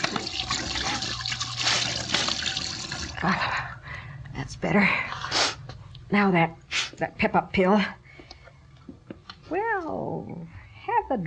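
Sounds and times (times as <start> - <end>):
tap running at a sink: 0.0 - 3.2
water scooped and splashed onto a face at a sink: 0.0 - 3.2
speech: 3.2 - 3.5, 4.6 - 5.1, 6.1 - 8.0, 9.5 - 11.2.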